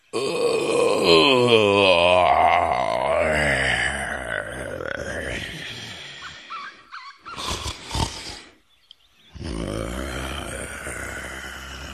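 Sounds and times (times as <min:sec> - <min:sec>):
lion giving a long deep groaning yawn: 0:00.1 - 0:06.3, 0:09.4 - 0:11.9
lion snoring with raspy snorts: 0:07.4 - 0:08.6, 0:09.4 - 0:11.9.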